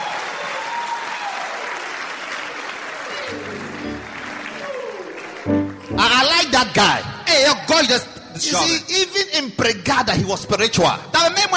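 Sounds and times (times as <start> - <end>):
audience applause at a religious gathering: 0.0 - 7.0
speech: 5.4 - 11.5.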